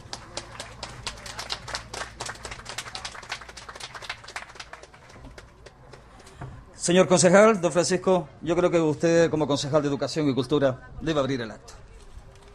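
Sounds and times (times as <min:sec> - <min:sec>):
audience applause at a public ceremony on stage: 0:00.0 - 0:06.1
speech: 0:06.8 - 0:11.8.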